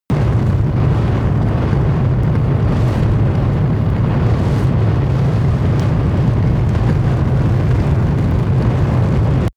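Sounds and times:
large object fire burning: 0:00.1 - 0:09.5.

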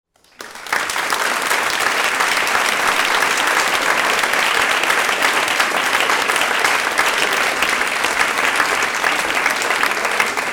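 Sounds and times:
theatre audience applause: 0:00.1 - 0:10.5.

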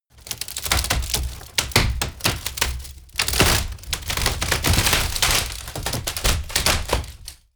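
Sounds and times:
large wood breaking: 0:00.2 - 0:07.4.

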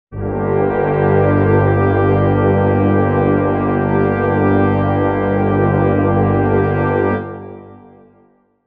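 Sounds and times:
brass chord in G minor: 0:00.1 - 0:08.4.

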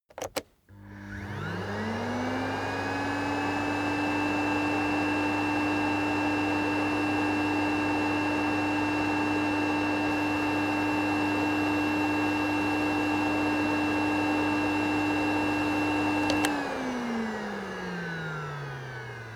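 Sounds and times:
vacuum low: 0:00.3 - 0:19.3.

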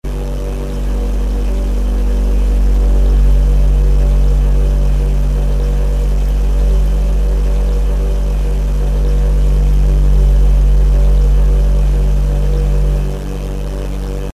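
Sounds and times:
smooth aggressive machine noise: 0:00.0 - 0:14.3.

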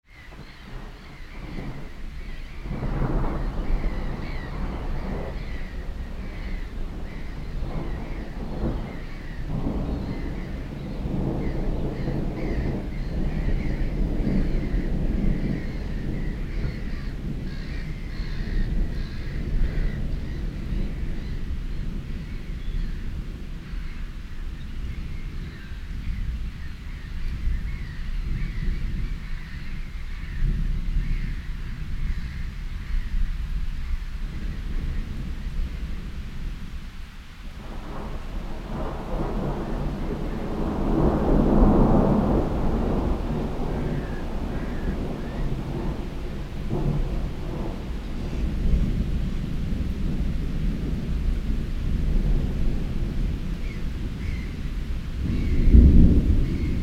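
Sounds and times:
thunderstorm over a lake: 0:00.1 - 0:56.8.

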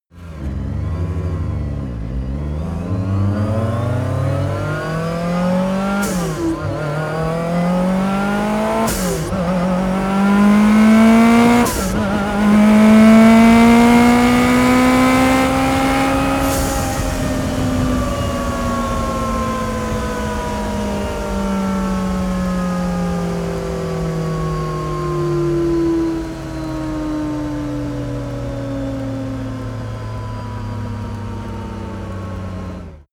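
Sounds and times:
Lancia S4 car long acceleration and deceleration: 0:00.1 - 0:33.1.

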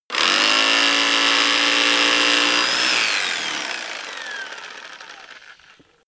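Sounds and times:
jigsaw running under load: 0:00.1 - 0:06.0.

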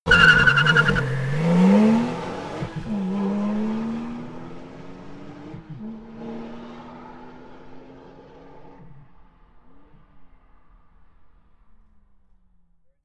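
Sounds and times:
Porsche GT2 sports car accelerating fast: 0:00.1 - 0:10.3.

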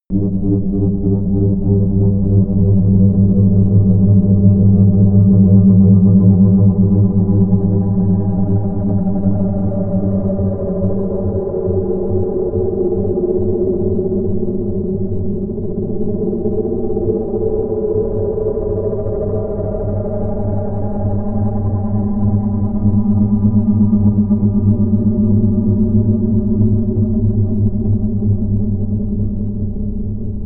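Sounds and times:
calm growling drone: 0:00.1 - 0:30.4.

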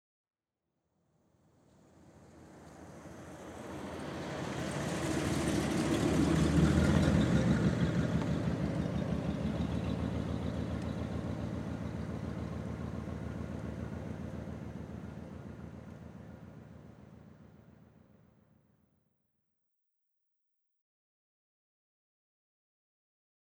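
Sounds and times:
50 Packard car passing slowly: 0:01.7 - 0:17.9.

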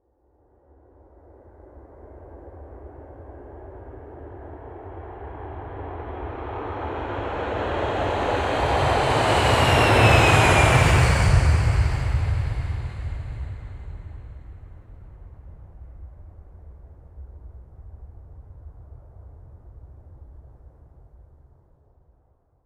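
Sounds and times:
747 jumbo jet taking off: 0:07.0 - 0:15.0.

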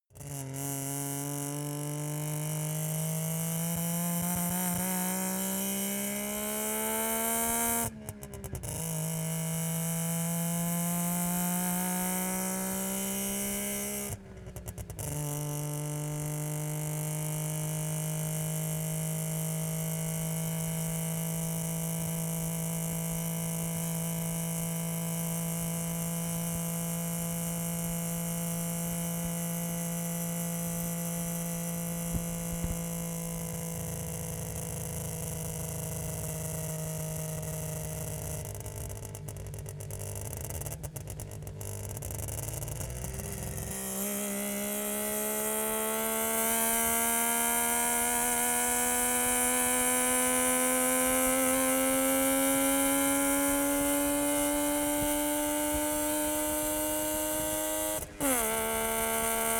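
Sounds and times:
Saab 92 car exhaust while driving: 0:00.1 - 0:59.5.

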